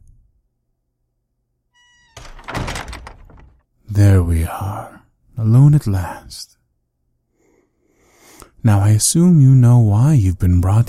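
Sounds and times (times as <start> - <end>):
brief tonal squeak: 1.7 - 2.2
door shutting with a heavy thunk: 1.9 - 3.6
speech: 4.0 - 6.6, 8.6 - 10.8.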